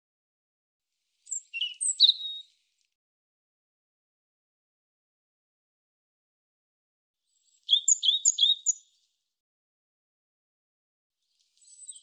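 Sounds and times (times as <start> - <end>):
European robin giving short high-pitched jumbled phrases: 1.3 - 2.5, 7.6 - 8.9, 11.7 - 12.0.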